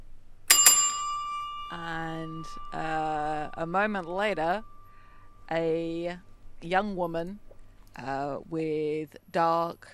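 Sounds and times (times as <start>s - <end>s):
doorbell with bright metallic tone: 0.5s - 8.4s
speech: 1.7s - 4.7s, 5.5s - 9.9s.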